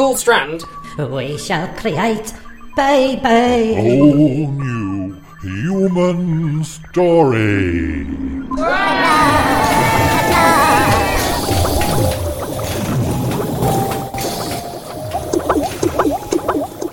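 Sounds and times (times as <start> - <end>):
speech: 0.0 - 4.8, 5.4 - 9.4
warbling squeaky tones: 1.8 - 16.9
thick liquid bubbling and simmering in a womb sac in a gestation laboratory: 11.0 - 16.9.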